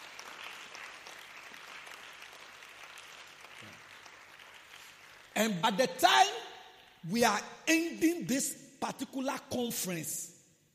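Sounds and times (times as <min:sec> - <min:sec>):
audience clapping: 0:00.0 - 0:07.0
speech: 0:05.4 - 0:06.4, 0:07.0 - 0:10.3.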